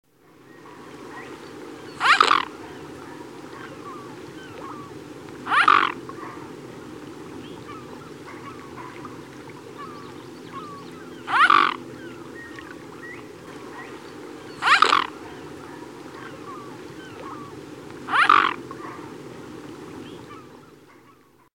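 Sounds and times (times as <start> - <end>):
mute swan: 0.2 - 21.5.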